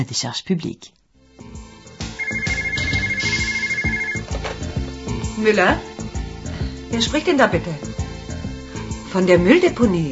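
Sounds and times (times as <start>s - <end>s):
speech: 0.0s - 1.6s, 5.4s - 6.0s, 6.9s - 8.0s, 9.1s - 10.0s
telephone ringing with a melodic electronic ringtone in a man's home: 2.2s - 4.2s.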